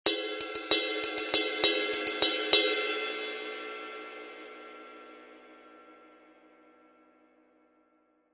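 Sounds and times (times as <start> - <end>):
22-inch custom medium ride cymbal: 0.1 - 3.8.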